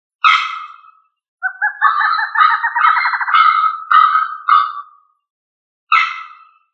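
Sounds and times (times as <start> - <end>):
songbird song with harsh bursts and rolling pulsed trill: 0.4 - 5.3.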